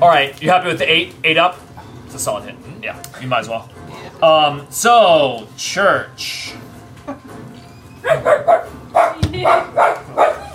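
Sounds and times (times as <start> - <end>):
speech: 0.0 - 7.4, 8.0 - 10.4
dogs barking in sharp yaps: 8.0 - 10.5.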